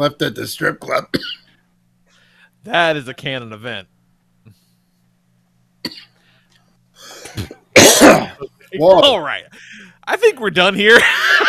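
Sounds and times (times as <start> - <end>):
speech: 0.0 - 1.4, 2.6 - 3.9, 5.8 - 6.1, 8.4 - 11.4
person coughing: 1.1 - 1.5, 5.8 - 6.2, 7.1 - 8.5
laughter: 10.9 - 11.4.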